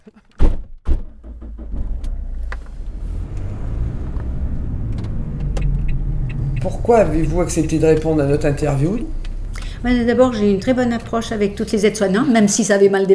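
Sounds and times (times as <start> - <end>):
heavy car door thunks: 0.4 - 12.0
car engine idling with a low rumble: 1.0 - 12.7
speech: 6.6 - 9.2, 9.8 - 13.1.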